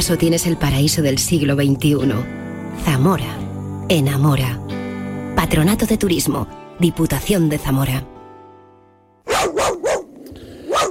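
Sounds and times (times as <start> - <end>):
speech: 0.0 - 4.7, 5.4 - 8.1
steady humming musical tone: 0.2 - 6.7
dog barking: 9.2 - 10.9.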